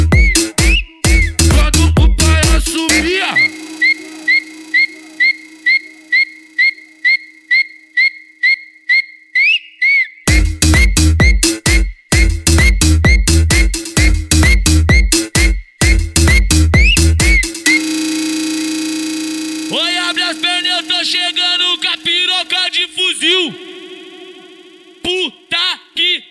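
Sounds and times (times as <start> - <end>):
short sharp human whistling: 0.0 - 2.5, 3.3 - 10.2, 10.8 - 17.9
loud thumping bass-heavy beat: 0.0 - 6.2, 10.3 - 25.5.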